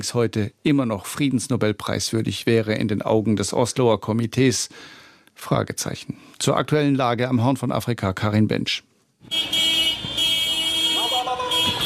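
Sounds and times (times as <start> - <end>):
speech: 0.0 - 9.6
pickup truck horns honking in a busy street: 9.2 - 11.8.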